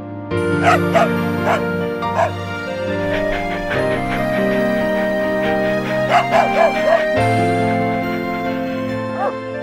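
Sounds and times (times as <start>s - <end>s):
music: 0.0s - 9.6s
dog barking: 0.6s - 2.4s, 6.1s - 7.2s, 9.1s - 9.4s.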